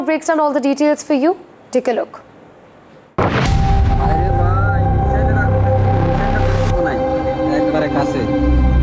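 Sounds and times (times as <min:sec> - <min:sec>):
speech: 0:00.0 - 0:02.3
round of explosions: 0:03.2 - 0:05.4
steady tonal drone: 0:04.0 - 0:08.8.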